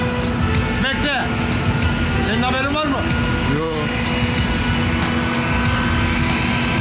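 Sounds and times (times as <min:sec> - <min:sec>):
airplane engine running: 0:00.0 - 0:06.7.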